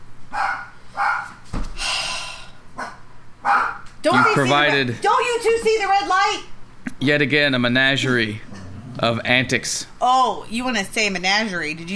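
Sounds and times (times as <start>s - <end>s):
dog barking at the back door: 0.3s - 1.4s, 2.8s - 4.4s
speech: 4.1s - 11.9s.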